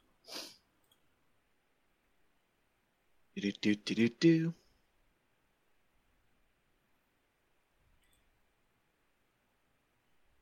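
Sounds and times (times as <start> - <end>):
nasal sniff: 0.2 - 0.6
speech: 3.4 - 4.6.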